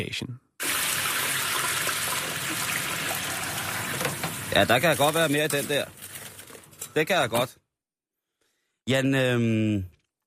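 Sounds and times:
speech: 0:00.0 - 0:00.5, 0:04.5 - 0:06.0, 0:06.9 - 0:07.6, 0:08.8 - 0:09.9
hot oil sizzling and bubbling in a deep fryer: 0:00.6 - 0:06.2.

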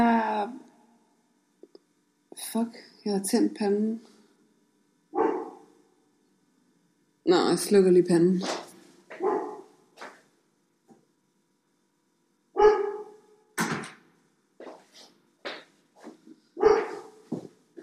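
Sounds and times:
speech: 0:02.4 - 0:04.1, 0:07.3 - 0:08.6
dog barking: 0:05.2 - 0:05.7, 0:09.2 - 0:09.7, 0:12.6 - 0:13.2, 0:16.6 - 0:17.2.

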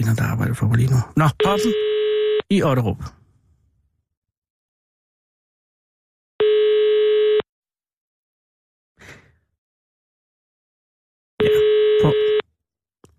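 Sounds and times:
speech: 0:00.0 - 0:01.9, 0:02.5 - 0:03.2
telephone ringback tone while a call is placed: 0:06.4 - 0:07.4, 0:11.4 - 0:12.4.

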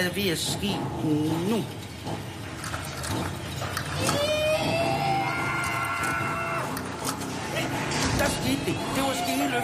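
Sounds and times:
speech: 0:00.0 - 0:02.4, 0:08.5 - 0:09.6
knocks and clatter: 0:00.0 - 0:09.0
small car body creaking and groaning while hoisted: 0:00.0 - 0:09.6.

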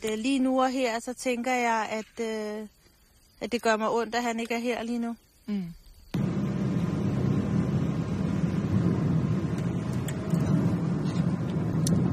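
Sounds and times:
speech: 0:00.0 - 0:02.8, 0:03.4 - 0:06.2
car in motion heard from inside the cabin driving out of Hunedoara: 0:06.2 - 0:12.1
road noise: 0:06.2 - 0:12.1.

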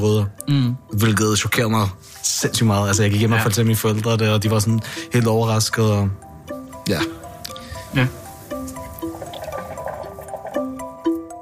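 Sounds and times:
speech: 0:00.0 - 0:06.3, 0:06.9 - 0:07.2, 0:07.9 - 0:08.2
soft music: 0:00.0 - 0:11.4
hookah water pipes bubbling: 0:07.3 - 0:11.1.

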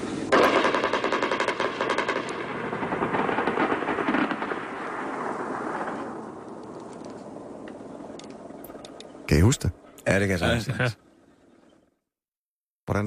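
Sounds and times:
rapid automatic gunfire from aircraft and helicopters at night: 0:00.3 - 0:05.9
speech: 0:09.4 - 0:11.0.

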